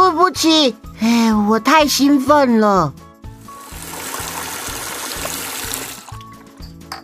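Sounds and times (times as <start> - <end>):
soft music: 0.0 - 7.0
speech: 0.4 - 3.0
water trickling from a loosely closed bathroom tap: 3.5 - 6.5.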